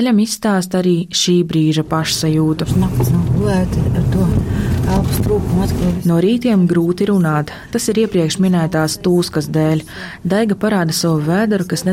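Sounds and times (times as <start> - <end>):
speech: 0.0 - 11.9
road and engine rumble from inside a moving car: 1.8 - 6.4.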